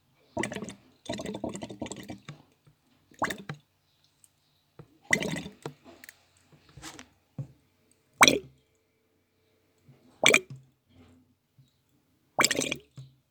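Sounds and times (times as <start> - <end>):
fermentation bubbles: 0.4 - 2.3, 3.2 - 3.6, 5.1 - 5.8, 8.2 - 8.4, 12.4 - 12.9.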